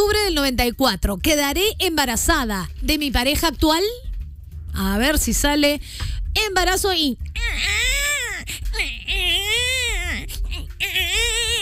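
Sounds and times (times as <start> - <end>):
speech: 0.4 - 4.0, 4.7 - 8.0
baby wailing: 7.4 - 11.5
baby gasping breaths: 8.3 - 8.9.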